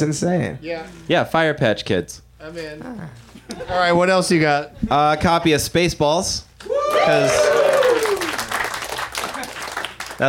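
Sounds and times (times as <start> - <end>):
speech: 0.0 - 7.6
applause: 6.9 - 10.2.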